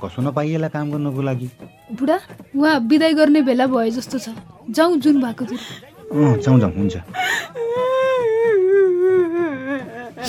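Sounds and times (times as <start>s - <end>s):
speech: 0.0s - 7.6s
young girl crying in a high wavering wail at a farewell: 5.4s - 10.2s.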